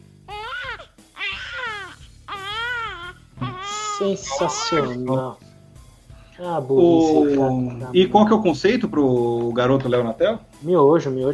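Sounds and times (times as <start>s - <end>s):
loud wailing cries: 0.3s - 5.2s
speech: 4.0s - 5.4s, 6.4s - 11.3s.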